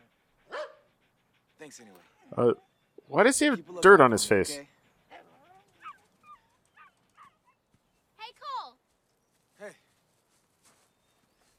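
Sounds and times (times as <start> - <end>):
dog barking: 0.4 - 0.9
speech: 1.6 - 4.7.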